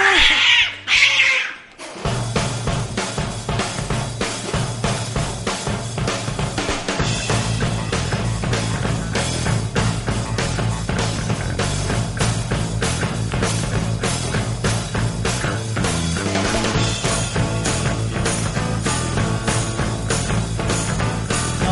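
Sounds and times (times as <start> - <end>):
kitten meows: 0.0 - 1.6
loud busy music: 1.7 - 21.7.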